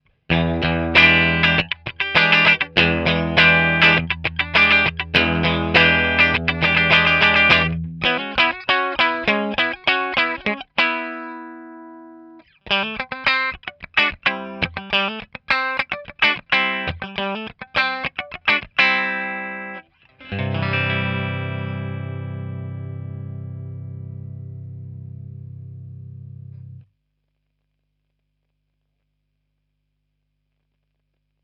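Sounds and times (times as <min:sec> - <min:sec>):
clean Telecaster electric guitar: 0:00.3 - 0:26.9.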